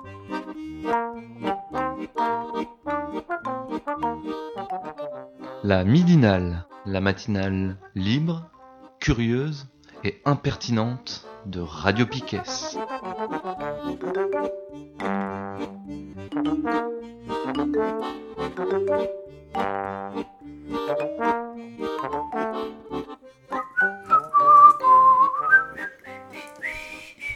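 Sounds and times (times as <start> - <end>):
light musical backing: 0.0 - 27.3
speech: 5.6 - 12.8, 13.9 - 15.2, 17.6 - 19.9
person whistling a tune: 23.5 - 27.3.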